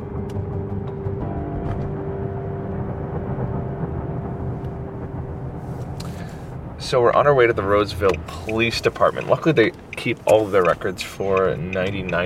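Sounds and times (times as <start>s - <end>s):
faint car engine whine: 0.0s - 12.2s
car driving interior road rumble heard from inside the cabin: 1.7s - 12.2s
speech: 6.9s - 12.2s
light clicks and ticks: 8.0s - 12.2s.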